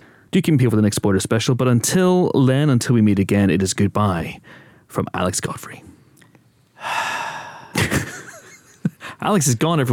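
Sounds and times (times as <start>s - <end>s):
breathy exhale over a microphone: 0.0s - 0.3s, 4.4s - 4.9s, 6.8s - 7.8s
speech: 0.3s - 5.9s, 9.2s - 9.9s.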